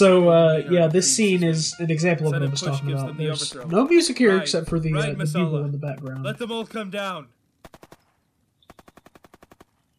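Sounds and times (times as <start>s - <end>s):
speech: 0.0s - 8.0s
automatic gunfire in a film battle scene: 7.6s - 9.9s.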